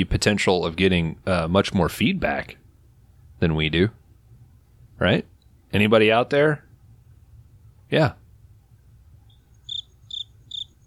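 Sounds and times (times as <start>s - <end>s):
speech: 0.0s - 2.6s, 3.4s - 4.0s, 5.0s - 6.6s, 7.9s - 8.2s
low quiet hum: 0.0s - 10.8s
high-pitched cricket chirping: 9.3s - 10.8s.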